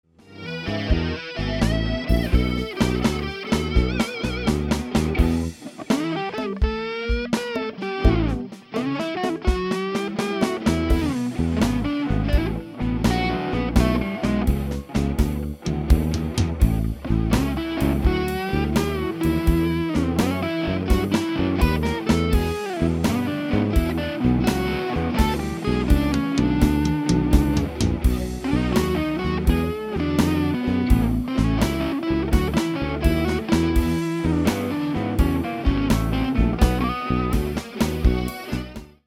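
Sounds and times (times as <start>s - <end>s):
blues lead guitar: 0.1s - 39.0s.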